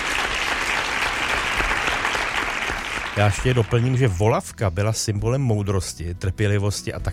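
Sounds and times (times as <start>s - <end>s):
group applauding: 0.0s - 4.4s
speech: 3.2s - 7.1s.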